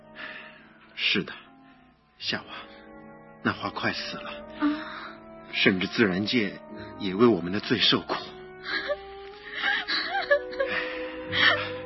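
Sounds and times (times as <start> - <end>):
speech: 1.1 - 1.5, 2.2 - 2.7, 3.4 - 4.9, 5.5 - 8.9
woman crying sorrowfully: 8.6 - 11.8.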